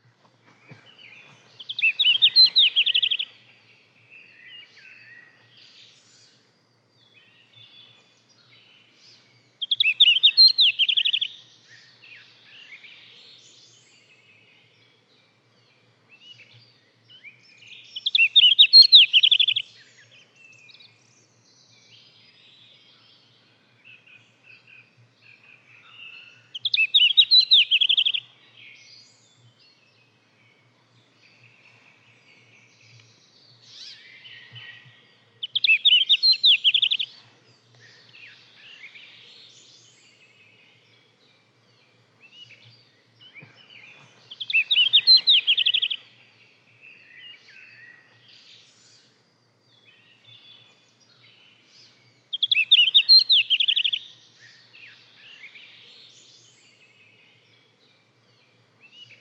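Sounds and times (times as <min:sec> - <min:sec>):
blastjart bird sounds: 0:00.0 - 0:59.1.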